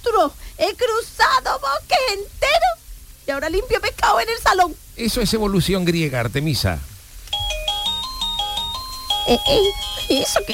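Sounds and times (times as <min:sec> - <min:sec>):
speech: 0:00.0 - 0:02.7, 0:03.3 - 0:06.9, 0:09.2 - 0:10.5
electronic doorbell at a house door chiming melodic tones: 0:07.3 - 0:10.5.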